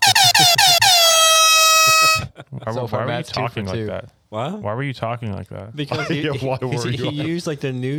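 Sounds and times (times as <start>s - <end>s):
loud blaring air horn blasts: 0.0s - 2.3s
speech: 2.6s - 7.9s.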